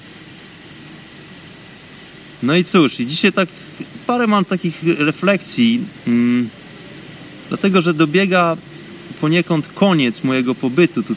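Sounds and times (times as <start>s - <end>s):
chorus of crickets chirping at night: 0.0s - 11.1s
soft low rumble of night air: 0.0s - 11.1s
speech: 2.4s - 6.6s, 7.5s - 11.1s.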